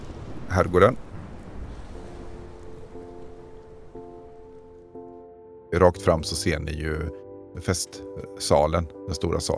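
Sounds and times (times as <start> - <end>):
hissing rain: 0.0 - 4.9
speech: 0.5 - 1.0, 5.8 - 9.5.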